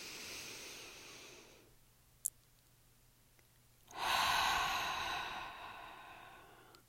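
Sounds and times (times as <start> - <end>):
deep breathing through the nose while lying flat on the back: 0.0 - 1.7, 3.9 - 6.8.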